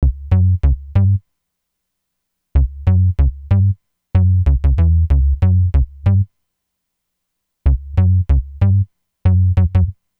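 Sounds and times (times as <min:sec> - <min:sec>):
chill pop synth bass in F sharp major: 0:00.0 - 0:01.2, 0:02.6 - 0:06.2, 0:07.7 - 0:09.9.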